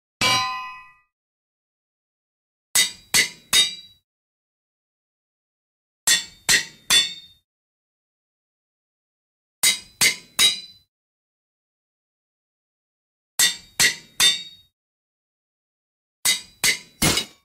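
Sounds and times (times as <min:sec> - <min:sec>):
hammer striking an anvil: 0:00.2 - 0:01.0, 0:02.8 - 0:04.0, 0:06.1 - 0:07.3, 0:09.6 - 0:10.8, 0:13.4 - 0:14.7, 0:16.3 - 0:17.4.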